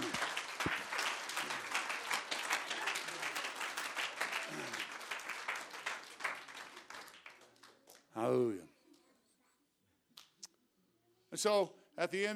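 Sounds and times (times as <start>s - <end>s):
audience applauding: 0.0s - 8.0s
speech: 8.2s - 8.7s, 11.4s - 12.3s.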